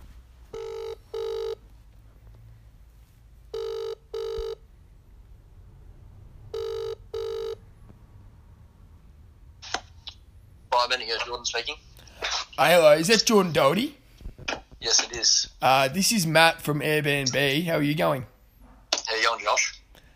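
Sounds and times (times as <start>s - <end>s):
faint hum: 0.0s - 20.1s
phone line ringing with double rings: 0.5s - 1.6s, 3.5s - 4.6s, 6.5s - 7.6s
speech: 10.9s - 11.8s, 12.6s - 14.0s, 14.8s - 18.3s.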